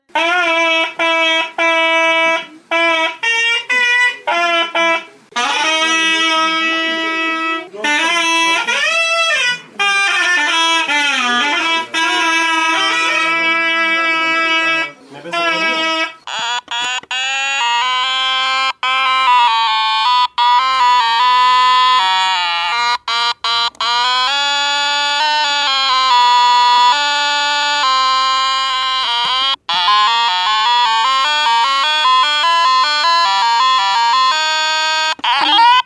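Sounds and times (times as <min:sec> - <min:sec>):
distorted toy's buzzy nasal drone: 0:00.1 - 0:35.8.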